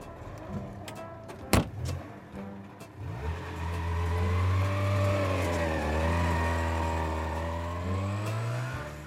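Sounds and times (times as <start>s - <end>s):
two-stroke car engine starting, running and revving: 2.9s - 9.0s.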